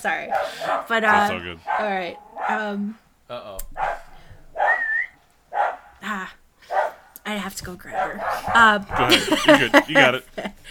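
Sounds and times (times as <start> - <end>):
speech: 0.0 - 3.9, 6.0 - 6.4, 7.3 - 10.7
female dog barking at a cat through a window: 0.3 - 2.7, 3.7 - 6.0, 6.7 - 7.1, 7.9 - 9.1
laughter: 9.0 - 10.7.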